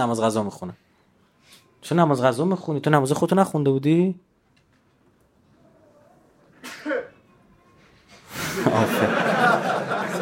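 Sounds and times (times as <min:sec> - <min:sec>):
speech: 0:00.0 - 0:00.8, 0:01.5 - 0:04.3, 0:08.6 - 0:09.7
person sneezing: 0:06.6 - 0:07.2
laughter: 0:08.4 - 0:10.2.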